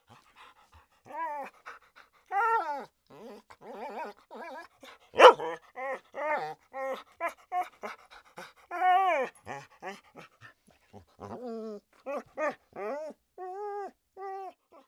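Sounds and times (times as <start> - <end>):
large dog whining: 1.1 - 1.6, 2.3 - 7.7, 8.7 - 10.0, 11.2 - 14.6.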